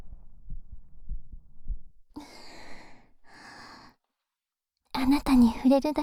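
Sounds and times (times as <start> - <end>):
heartbeat: 0.0 - 2.1
long airy breaths: 2.2 - 4.0
speech: 5.1 - 6.0.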